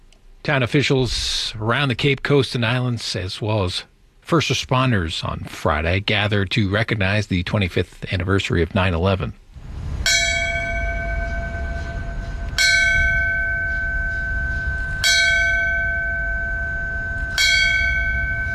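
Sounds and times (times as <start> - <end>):
low outdoor rumble: 0.0 - 18.5
speech: 0.5 - 9.4
fire department bell ringing ceremonially: 10.0 - 18.5.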